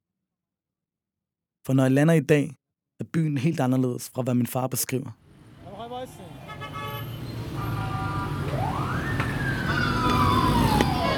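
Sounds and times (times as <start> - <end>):
speech: 1.6 - 5.2
dense street traffic engine rumble in Tehran Iran: 5.3 - 11.1
car horn toots in Tehran street traffic: 6.2 - 8.5, 11.0 - 11.1
siren sweeping up and gliding down: 7.1 - 11.1.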